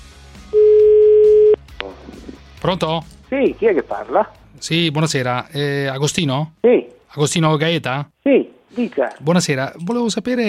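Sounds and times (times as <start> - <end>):
telephone ringing tone while a call is placed: 0.6 - 1.6
speech: 2.6 - 10.4.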